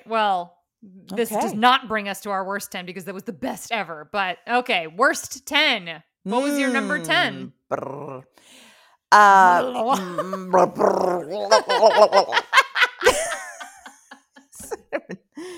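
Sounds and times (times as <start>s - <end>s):
speech: 0.1s - 12.4s
person imitating a dog barking: 1.1s - 1.7s, 6.3s - 8.2s, 9.1s - 12.4s
laughter: 11.3s - 15.5s.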